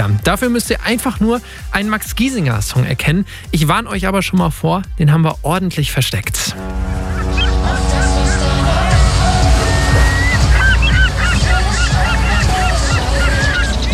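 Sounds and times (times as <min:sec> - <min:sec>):
speech: 0:00.0 - 0:07.0
large container ship's engine droning through a harbour: 0:06.5 - 0:13.9
gulls screeching and squawking over a harbour: 0:06.6 - 0:13.9.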